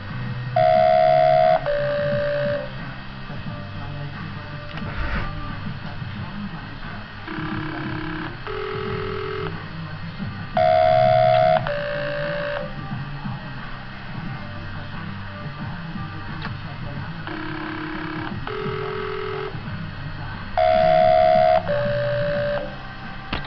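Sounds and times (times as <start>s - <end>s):
background music: 0.0s - 23.4s
phone tones: 0.6s - 2.8s, 7.3s - 9.6s, 10.6s - 12.8s, 17.2s - 19.7s, 20.5s - 22.8s.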